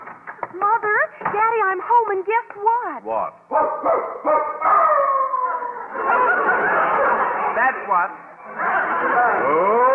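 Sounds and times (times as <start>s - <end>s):
speech: 0.8s - 5.2s, 7.6s - 9.9s
dog howling: 3.6s - 5.8s
laughter: 5.2s - 9.9s.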